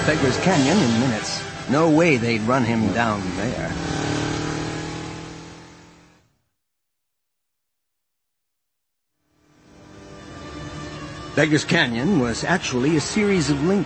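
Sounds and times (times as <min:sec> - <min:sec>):
speech: 0:00.0 - 0:04.0, 0:11.4 - 0:13.8
racing swoop vehicle engine revving hard as the throttle is hit in a wide turn: 0:00.0 - 0:06.3, 0:09.5 - 0:13.8.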